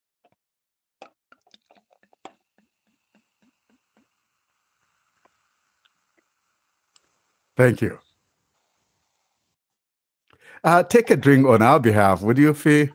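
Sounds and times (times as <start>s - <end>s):
wine glugging out of a bottle into a glass: 1.0s - 3.2s
speech: 7.6s - 8.0s, 10.6s - 12.9s.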